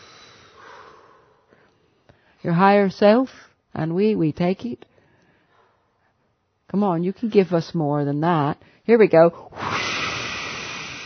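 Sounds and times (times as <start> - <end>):
speech: 2.4 - 4.9, 6.7 - 9.6
forceful whooshing exhale: 9.5 - 11.0.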